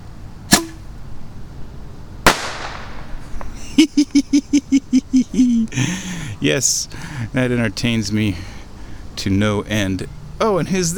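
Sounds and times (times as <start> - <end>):
bottle rocket firing off with a sharp snap: 2.3 - 3.1
bottle rocket bursting with a loud crack outdoors: 2.3 - 3.2
laughter: 3.5 - 6.3
speech: 5.7 - 8.6, 9.2 - 10.9.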